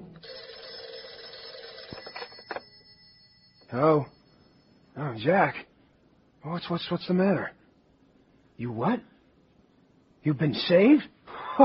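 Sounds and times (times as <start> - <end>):
old-style telephone bell ringing at night: 0.2 - 5.1
speech: 3.7 - 4.2, 5.0 - 5.7, 6.4 - 7.6, 8.6 - 9.1, 10.2 - 11.6.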